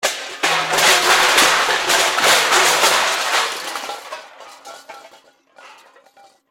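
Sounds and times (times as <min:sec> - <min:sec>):
metal crash impact: 0:00.0 - 0:06.4.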